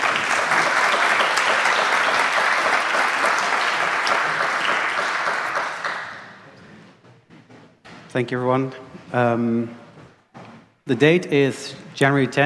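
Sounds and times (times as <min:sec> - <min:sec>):
crowd applauding: 0:00.0 - 0:06.6
speech: 0:08.2 - 0:09.8, 0:10.9 - 0:12.4.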